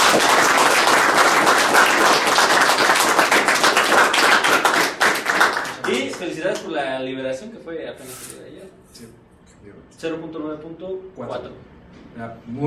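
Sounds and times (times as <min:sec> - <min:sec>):
crowd applauding: 0:00.0 - 0:06.6
speech: 0:06.6 - 0:12.6.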